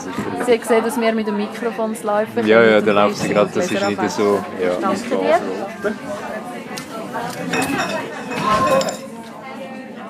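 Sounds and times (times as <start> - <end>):
murmur of chatter at a bar: 0.0 - 10.0
speech: 0.3 - 6.3
glasses clinking as a woman washes glasses at a bar: 3.2 - 5.1, 7.2 - 9.1.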